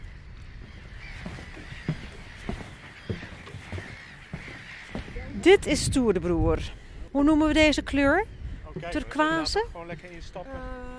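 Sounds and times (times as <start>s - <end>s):
crowd of birds cawing outdoors: 0.0s - 5.8s
steady windy rumble: 0.0s - 10.9s
speech: 5.4s - 10.9s.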